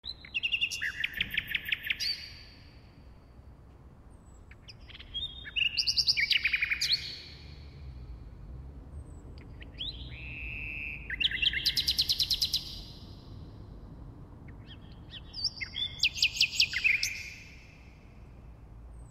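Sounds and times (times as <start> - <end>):
nightingale singing: 0.0 - 2.8, 4.2 - 8.1, 9.0 - 13.4, 14.5 - 17.9.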